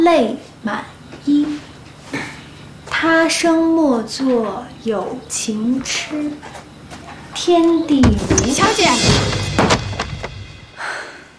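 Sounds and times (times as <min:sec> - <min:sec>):
speech: 0:00.1 - 0:01.6, 0:03.0 - 0:06.6, 0:07.4 - 0:09.4
knocks and thumps of a door opening: 0:08.0 - 0:10.7.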